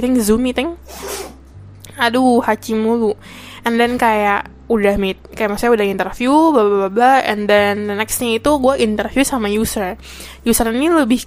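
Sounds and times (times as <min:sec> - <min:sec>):
speech: 0:00.0 - 0:01.1, 0:02.0 - 0:11.2
dog sneezing: 0:00.9 - 0:01.4.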